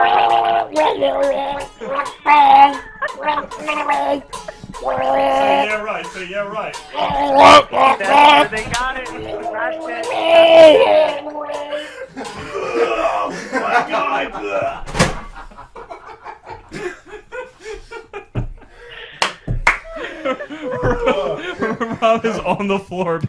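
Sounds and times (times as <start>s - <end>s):
person gargling: 0.0s - 5.7s, 9.3s - 11.8s, 12.5s - 13.3s
laughter: 0.0s - 23.2s
speech: 0.8s - 15.0s, 20.9s - 23.2s.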